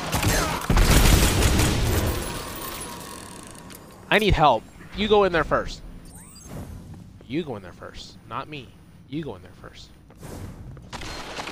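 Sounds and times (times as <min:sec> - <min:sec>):
heavy booming video game hand cannon fire: 0:00.0 - 0:02.6, 0:10.2 - 0:11.5
speech: 0:04.1 - 0:05.8, 0:07.3 - 0:10.6.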